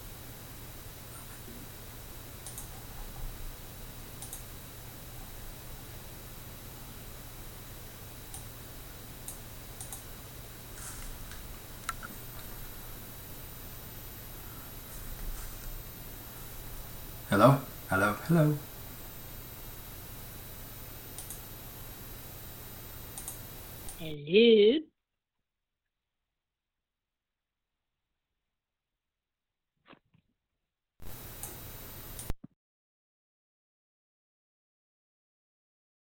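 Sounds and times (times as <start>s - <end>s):
steady hiss of noise: 0.0s - 24.0s
faint clicks from a device: 2.4s - 3.2s, 4.2s - 4.5s, 9.2s - 10.1s, 10.9s - 12.2s, 21.1s - 21.4s, 23.1s - 24.0s, 31.4s - 32.4s
speech: 17.3s - 18.7s, 24.2s - 24.9s.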